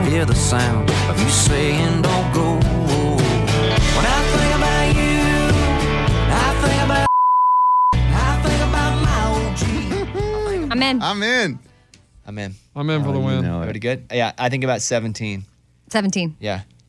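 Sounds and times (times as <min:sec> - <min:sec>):
country song: 0:00.0 - 0:07.1, 0:08.0 - 0:11.0
speech: 0:00.1 - 0:02.7, 0:10.8 - 0:11.7, 0:12.3 - 0:16.7
censor bleep over a number in a country song: 0:07.1 - 0:08.0.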